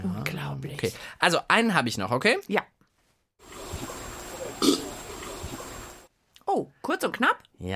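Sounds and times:
speech: 0.6s - 2.8s, 6.5s - 7.7s
deep rumbling gorilla burp: 4.4s - 5.1s.

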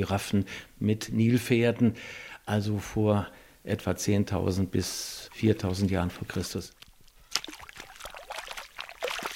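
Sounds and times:
speech: 0.0s - 6.8s
shallow surface water pouring and splashing from a scoop well: 5.2s - 9.3s.

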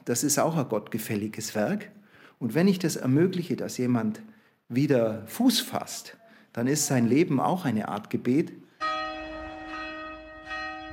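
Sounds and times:
speech: 0.0s - 8.6s
church bells ringing at noon: 8.8s - 10.9s.

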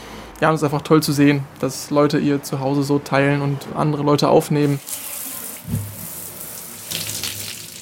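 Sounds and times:
speech: 0.4s - 5.1s
shower water running: 4.6s - 7.8s.

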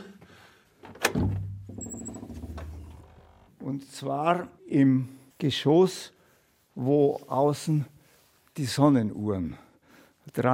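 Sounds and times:
door creaking as it swings: 0.8s - 3.7s
door latch clunk: 0.9s - 3.2s
speech: 3.7s - 6.2s, 6.8s - 7.9s, 8.6s - 9.6s, 10.3s - 10.5s.

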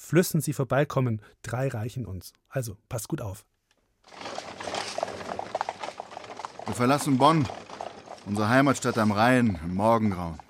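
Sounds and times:
speech: 0.1s - 3.5s, 6.7s - 7.6s, 8.2s - 10.4s
hooves of a horse-drawn carriage clip-clopping: 4.1s - 10.4s.

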